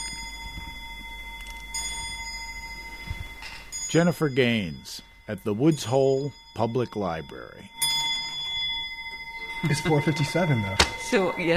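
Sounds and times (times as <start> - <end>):
antique clock chiming at a public library in Woods Hole: 0.0 - 11.5
speech: 3.9 - 7.8, 9.6 - 11.5.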